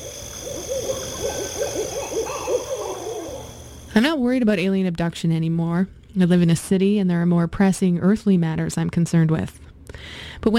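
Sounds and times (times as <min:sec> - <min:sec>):
owl hooting in a nighttime woodland: 0:00.0 - 0:03.9
high droning of insects in a nighttime woodland: 0:00.0 - 0:04.2
speech: 0:01.5 - 0:03.0, 0:03.9 - 0:10.5.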